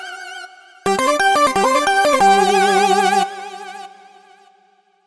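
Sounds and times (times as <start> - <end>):
synth melody: 0.9 - 3.7.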